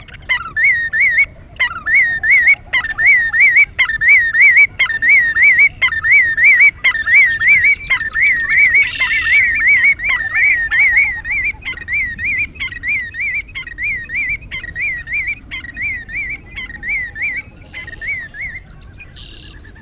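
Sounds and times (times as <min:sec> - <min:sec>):
Willet calling with loud ringing wavy notes: 0:00.0 - 0:19.8.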